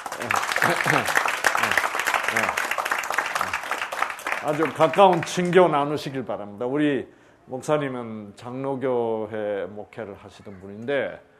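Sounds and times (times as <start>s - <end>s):
roomful of people applauding to welcome guests: 0.0s - 5.6s
speech: 0.2s - 2.7s, 4.4s - 11.3s.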